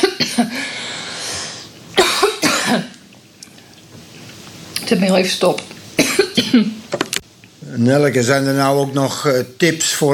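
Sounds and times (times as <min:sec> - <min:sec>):
dry coughs from a tickle in the throat: 0:00.0 - 0:00.6, 0:02.0 - 0:03.0, 0:06.0 - 0:06.8
speech: 0:04.9 - 0:05.7, 0:06.4 - 0:07.1, 0:07.8 - 0:10.1.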